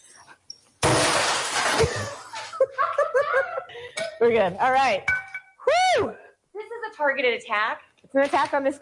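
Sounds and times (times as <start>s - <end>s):
object smashed with a baseball bat: 0.8s - 2.2s
shattering debris: 0.8s - 2.4s
several people laughing and chuckling: 1.9s - 3.7s
speech: 4.2s - 5.1s, 5.9s - 6.2s, 7.0s - 8.8s.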